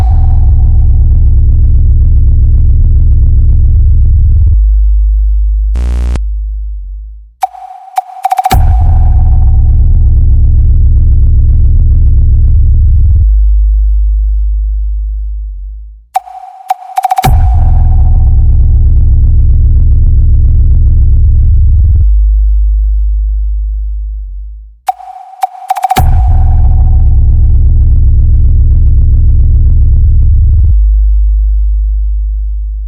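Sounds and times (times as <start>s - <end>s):
bass test tone for a sound check: 0.0s - 32.8s
sharp higher beeps: 7.4s - 9.2s, 16.2s - 18.4s, 24.9s - 27.0s.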